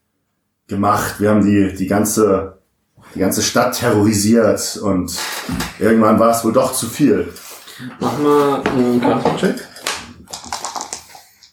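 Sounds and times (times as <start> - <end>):
speech: 0.7 - 9.7
dice rattling and clacking against a hard surface: 10.3 - 11.4.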